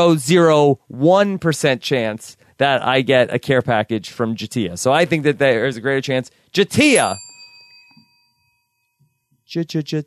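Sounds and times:
speech: 0:00.0 - 0:07.3, 0:09.5 - 0:10.0
bell ringing with a sustained echoing tone: 0:06.8 - 0:09.5.

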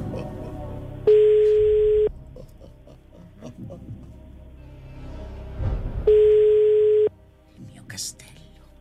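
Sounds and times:
long steady electronic phone line ring tones: 0:01.1 - 0:02.1, 0:06.1 - 0:07.1.

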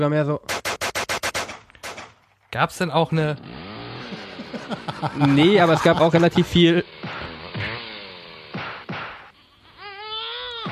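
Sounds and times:
speech: 0:00.0 - 0:00.6, 0:02.5 - 0:03.7, 0:04.5 - 0:07.7
laughter: 0:03.9 - 0:06.8
baby crying: 0:09.7 - 0:10.6.

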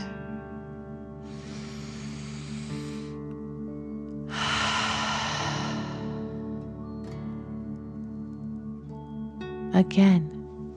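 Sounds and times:
soft steady tonal drone: 0:00.0 - 0:09.6
deep breathing in and out: 0:01.2 - 0:06.9
speech: 0:09.8 - 0:10.4.

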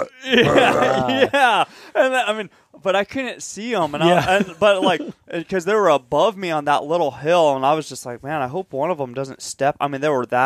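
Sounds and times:
human voice imitating a bull's heavy breathing grunt: 0:00.0 - 0:01.4
speech: 0:00.1 - 0:10.4
laughter: 0:00.2 - 0:02.2, 0:03.8 - 0:05.5.

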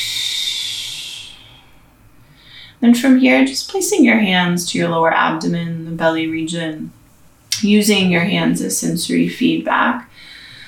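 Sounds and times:
deep clearing breath out through open mouth during a breathing exercise: 0:00.0 - 0:01.8
speech: 0:02.8 - 0:07.0, 0:07.6 - 0:10.1.

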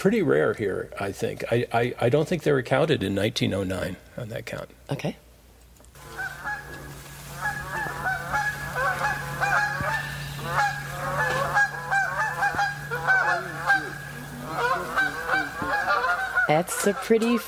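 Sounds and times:
speech: 0:00.0 - 0:05.2, 0:16.6 - 0:17.4
steady low hum: 0:00.0 - 0:17.4
flock of Canada geese honking: 0:06.0 - 0:17.4.

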